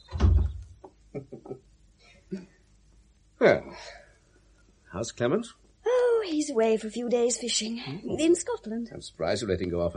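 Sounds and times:
heavy low thud: 0.1 - 0.7
speech: 3.4 - 4.0, 4.9 - 5.6, 6.3 - 9.9.

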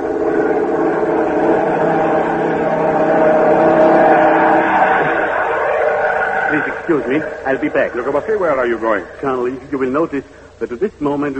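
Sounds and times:
propeller airplane engine droning overhead: 0.0 - 10.6
speech: 6.9 - 11.3.

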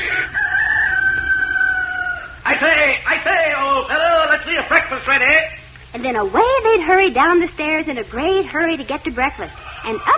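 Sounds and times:
rooster crowing: 0.0 - 2.6
speech: 3.8 - 10.1.

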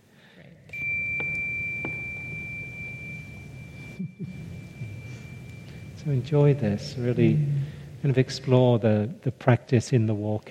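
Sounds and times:
meditation bell ringing with a clear sustained pure tone: 0.7 - 8.0
speech: 6.0 - 10.4.

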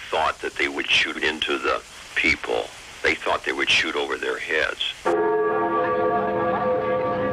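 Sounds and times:
speech: 0.1 - 5.3
Freedom Bell ringing over the newly opened border in Berlin: 5.1 - 7.3.

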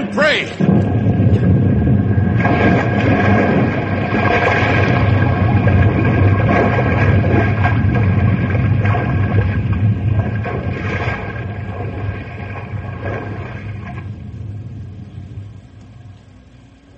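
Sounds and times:
speech: 0.3 - 0.6
massive iceberg cracking and splitting with deep rumbling and grinding: 0.6 - 14.1.

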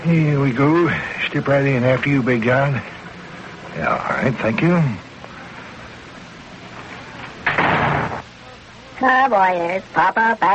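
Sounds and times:
speech: 0.0 - 3.0, 3.8 - 5.1, 9.0 - 10.5
shop door swinging open: 7.4 - 8.2.

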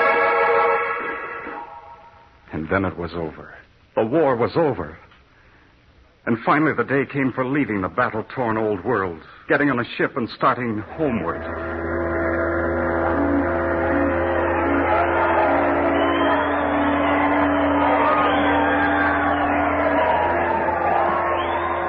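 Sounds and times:
large crowd shouting and cheering in celebration: 0.0 - 2.2, 11.2 - 21.8
speech: 2.7 - 5.0, 6.2 - 11.9.

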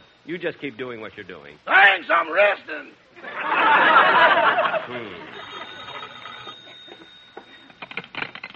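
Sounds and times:
speech: 0.3 - 5.4
loud burst of audience laughter: 3.2 - 6.0
old telephone bell ringing with a shrill metallic jangle: 5.2 - 7.9.

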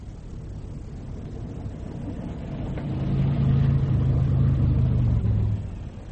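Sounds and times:
car engine starting and driving: 0.7 - 6.1.

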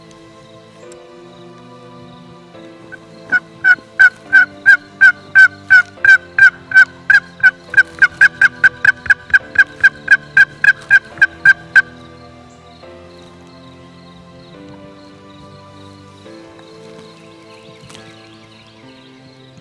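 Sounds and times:
wild turkey gobblers gobbling: 3.3 - 12.0.

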